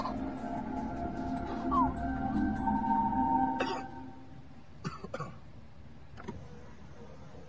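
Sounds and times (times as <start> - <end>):
steady low engine-like rumble: 0.0 - 4.8
man coughing in a car: 3.6 - 3.9.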